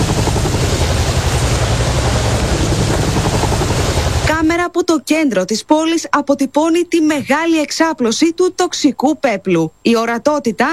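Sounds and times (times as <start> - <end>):
helicopter flying overhead with heavy rotor thudding: 0.0 - 4.6
speech: 4.8 - 10.7.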